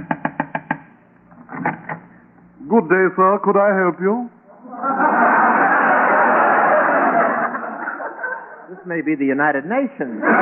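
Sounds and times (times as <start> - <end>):
knocking on a door: 0.0 - 0.9
speech: 2.7 - 5.0, 8.8 - 10.3
laughter: 3.7 - 7.7.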